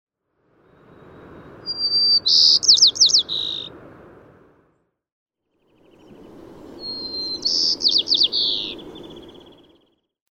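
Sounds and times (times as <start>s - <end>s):
low rushing noise: 0.4s - 4.8s, 5.7s - 9.8s
White-crowned Sparrow singing: 1.7s - 3.7s, 5.6s - 10.0s.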